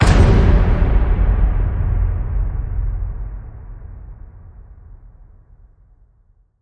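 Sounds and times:
big barbaric hit: 0.0s - 4.8s.

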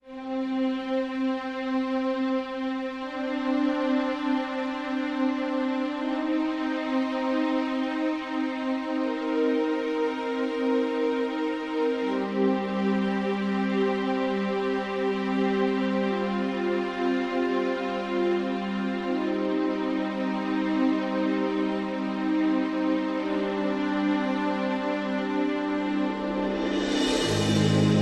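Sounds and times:
strings: 0.0s - 28.0s
percussion: 25.7s - 28.0s.

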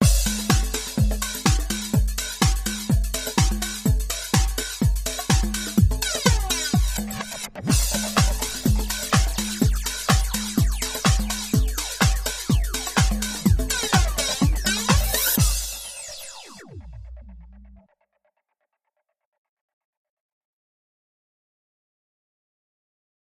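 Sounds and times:
drums: 0.0s - 17.8s
sound effects: 6.0s - 17.8s.

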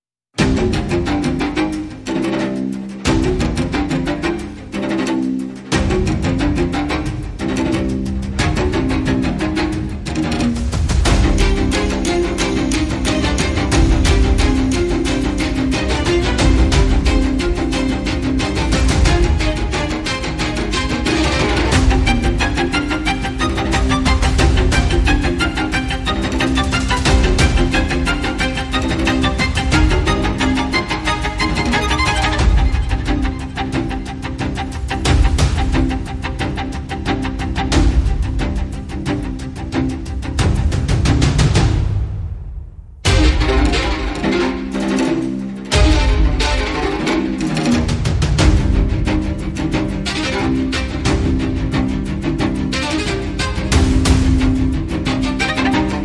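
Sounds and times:
percussion: 0.3s - 56.0s
strings: 0.4s - 56.0s.

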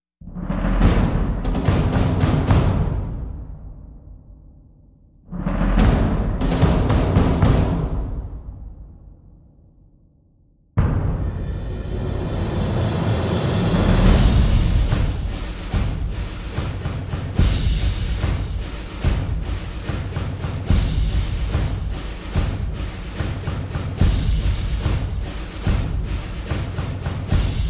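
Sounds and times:
percussion: 0.2s - 4.7s, 5.3s - 9.5s, 10.8s - 27.6s.

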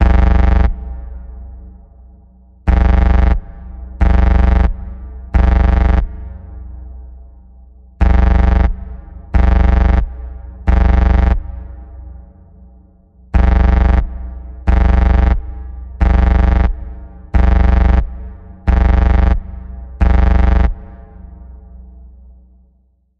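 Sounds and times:
emergency alarm tone in the key of B: 0.0s - 0.8s, 2.7s - 3.4s, 4.0s - 4.8s, 5.4s - 6.1s, 8.0s - 8.8s, 9.4s - 10.1s, 10.7s - 11.5s, 13.4s - 14.1s, 14.7s - 16.8s, 17.4s - 18.1s, 18.7s - 19.4s, 20.0s - 20.8s.

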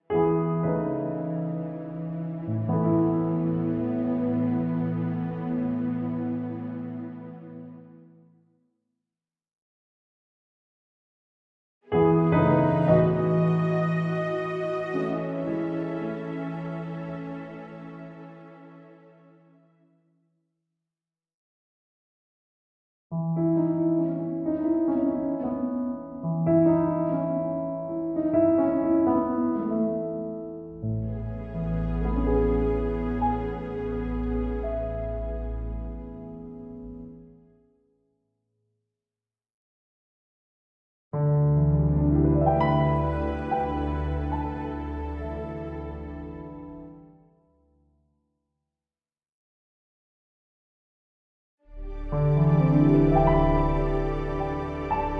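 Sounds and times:
underscore music with strings: 0.2s - 8.2s, 12.0s - 19.8s, 23.4s - 37.3s, 41.6s - 47.1s, 51.7s - 55.1s.

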